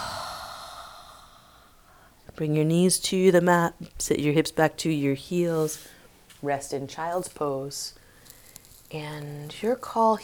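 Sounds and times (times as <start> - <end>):
person breathing in through the nose and out through the mouth during yoga: 0.0 - 2.2, 8.0 - 8.7
speech: 2.4 - 8.0, 8.9 - 10.2.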